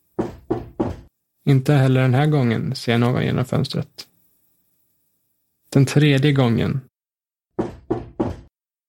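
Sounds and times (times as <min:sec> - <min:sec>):
firm knocking on a wooden door: 0:00.2 - 0:01.1, 0:07.6 - 0:08.5
speech: 0:01.5 - 0:04.1, 0:05.7 - 0:06.9.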